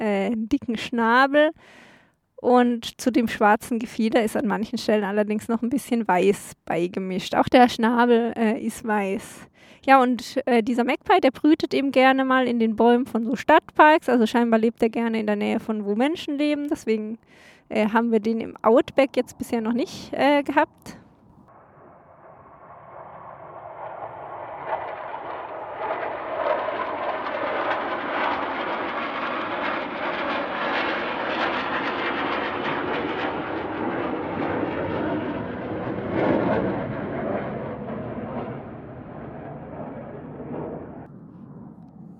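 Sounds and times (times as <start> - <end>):
speech: 0.5 - 21.0
four jet aircraft flying low overhead: 20.7 - 42.1.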